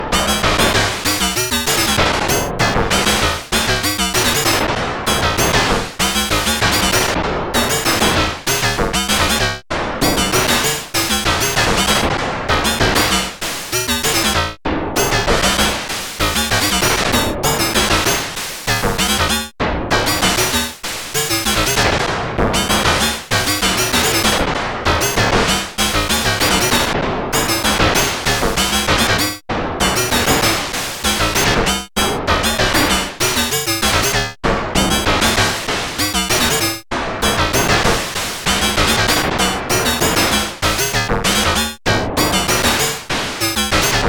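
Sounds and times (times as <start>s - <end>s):
synthesizer: 0.1s - 43.9s.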